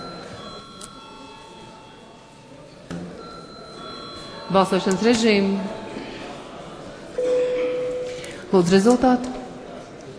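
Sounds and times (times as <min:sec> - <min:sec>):
parliament chamber bell ringing before a vote: 0:00.0 - 0:06.5, 0:07.2 - 0:08.4
faint murmur in a parliament chamber: 0:00.0 - 0:10.1
speech: 0:04.5 - 0:05.8, 0:08.5 - 0:09.4.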